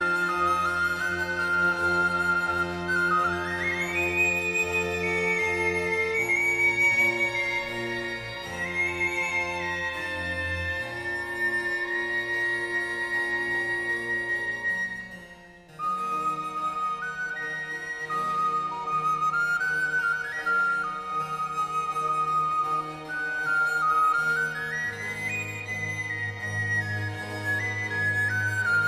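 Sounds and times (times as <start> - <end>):
sopranino recorder in a largo concerto in C major: 0.0 - 28.8
strings: 0.0 - 28.8.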